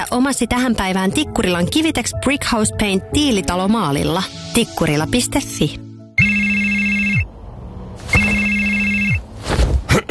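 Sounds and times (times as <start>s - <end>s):
speech: 0.0s - 5.8s
telephone ringing: 6.2s - 7.3s, 8.1s - 9.3s.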